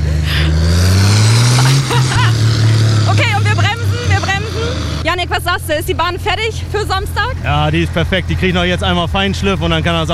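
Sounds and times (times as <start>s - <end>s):
laughter: 0.0s - 0.8s, 1.4s - 4.8s
loud diesel tractor engine revving under load: 0.0s - 10.1s
people calling out: 1.6s - 7.3s
speech: 5.4s - 10.1s.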